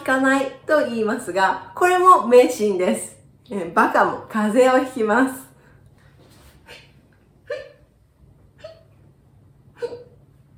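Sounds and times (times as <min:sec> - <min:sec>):
speech: 0:00.1 - 0:05.4
person hiccuping: 0:06.7 - 0:07.9, 0:08.6 - 0:08.9, 0:09.8 - 0:10.2.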